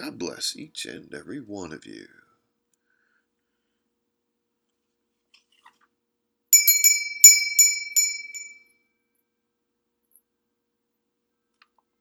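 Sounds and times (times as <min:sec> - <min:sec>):
speech: 0:00.1 - 0:02.2
small bell chime: 0:06.6 - 0:08.7.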